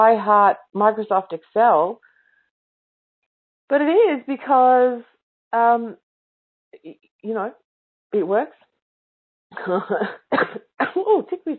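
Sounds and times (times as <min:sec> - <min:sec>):
speech: 0:00.0 - 0:02.1, 0:03.7 - 0:06.0, 0:06.8 - 0:08.6, 0:09.5 - 0:11.5
throaty rasping coughing: 0:09.6 - 0:11.2.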